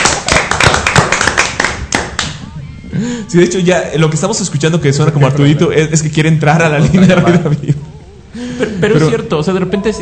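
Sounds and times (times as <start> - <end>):
audience applause for a departing guest: 0.0 - 2.3
speech: 3.1 - 7.8, 8.8 - 10.0
laughter: 6.6 - 9.4.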